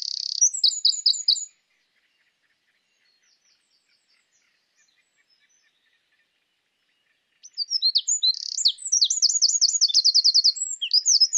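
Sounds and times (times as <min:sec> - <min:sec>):
Eurasian wren Troglodytes troglodytes song with rapid twittering and trill: 0:00.0 - 0:11.3.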